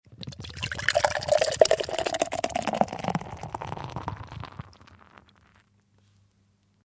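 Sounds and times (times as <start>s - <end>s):
beer sizzling: 0.2s - 5.6s.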